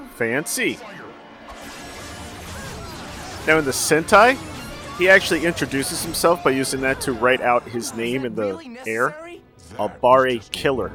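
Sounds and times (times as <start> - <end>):
speech: 0.2 - 1.0, 3.4 - 10.9
sci-fi energy blasts of laser arrows fired from a sword: 1.5 - 7.2.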